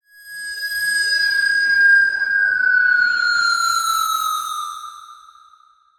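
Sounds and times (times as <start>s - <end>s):
descending whistle with delay and panning: 0.2s - 5.7s.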